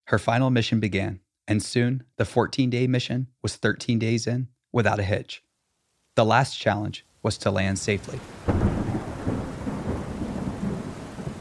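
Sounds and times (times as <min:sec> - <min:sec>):
speech: 0:00.1 - 0:05.4, 0:06.2 - 0:08.7
heavy rain from a storm at Kennedy Space Center in Florida: 0:07.4 - 0:11.4
deep rolling thunder from a storm at Kennedy Space Center in Florida: 0:08.3 - 0:11.4.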